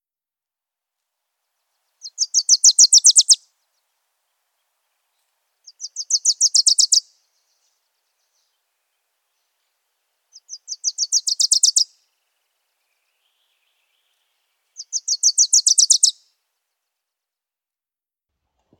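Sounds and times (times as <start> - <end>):
Wilson's Warbler singing: 1.7 - 16.3.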